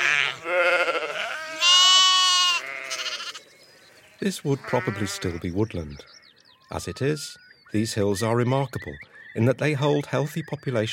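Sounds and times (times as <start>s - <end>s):
sheep bleating on upland fell and moor in England: 0.0s - 3.4s, 4.5s - 6.1s
speech: 4.2s - 10.9s.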